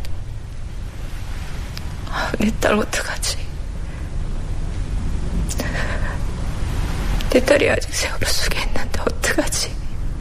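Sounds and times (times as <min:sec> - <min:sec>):
wind blowing by the sea at Paengmok Harbor South Korea: 0:00.0 - 0:10.2
speech: 0:02.2 - 0:03.5, 0:07.3 - 0:09.8.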